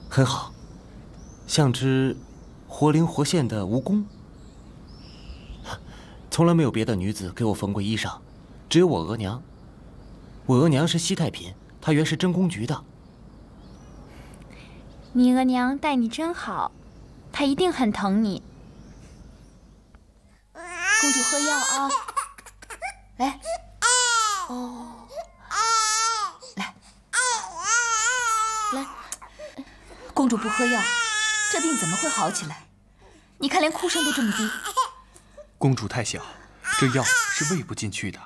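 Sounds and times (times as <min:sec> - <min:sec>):
speech: 0:00.2 - 0:00.5, 0:01.5 - 0:04.2, 0:06.4 - 0:09.5, 0:10.5 - 0:12.9, 0:15.1 - 0:18.5, 0:21.0 - 0:22.1, 0:23.2 - 0:23.6, 0:24.5 - 0:24.9, 0:30.2 - 0:32.6, 0:33.4 - 0:34.7, 0:35.6 - 0:38.2
small sick infant crying weakly: 0:20.6 - 0:29.1, 0:30.4 - 0:32.6, 0:33.7 - 0:35.0, 0:36.6 - 0:37.7.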